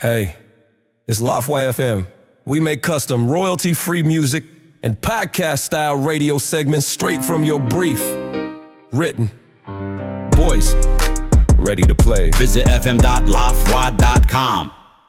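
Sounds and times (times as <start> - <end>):
voiceover: 0.0 - 0.4, 1.1 - 8.3, 8.9 - 9.5, 10.4 - 10.8, 11.6 - 14.8
hip hop music bed for a radio segment: 7.0 - 14.8.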